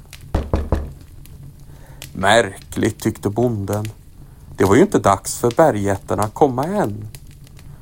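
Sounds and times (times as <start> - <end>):
firm knocks on a wooden farmhouse door on Christmas Eve evening: 0.3 - 1.0
speech: 2.2 - 4.0, 4.6 - 7.2.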